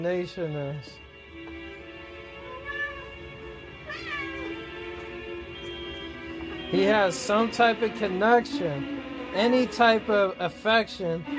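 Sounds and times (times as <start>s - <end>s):
speech: 0.0s - 1.1s, 6.7s - 11.3s
kitten meowing: 2.3s - 5.1s.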